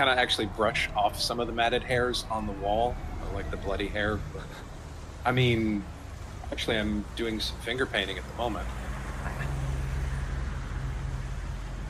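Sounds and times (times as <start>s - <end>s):
speech: 0.0s - 8.8s
cab engine rumbling as it pulls up: 0.0s - 11.8s
road noise: 0.0s - 11.8s.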